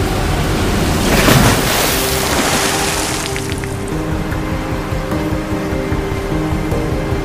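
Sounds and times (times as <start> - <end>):
vehicle splashing through a waterfall: 0.0 - 3.9
vehicle engine droning: 0.0 - 7.2.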